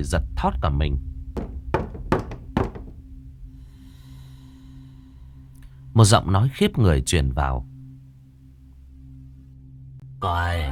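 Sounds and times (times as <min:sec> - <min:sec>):
speech: 0:00.0 - 0:01.1, 0:06.0 - 0:07.7, 0:10.2 - 0:10.7
knocking on a neighboring room's door: 0:01.4 - 0:03.0.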